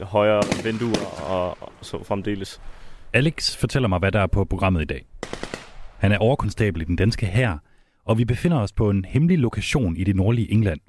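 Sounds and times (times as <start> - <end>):
speech: 0.0 - 5.4, 6.0 - 10.8
AK-47 rifle shots at a training site in northern England: 0.3 - 2.6, 5.2 - 6.3.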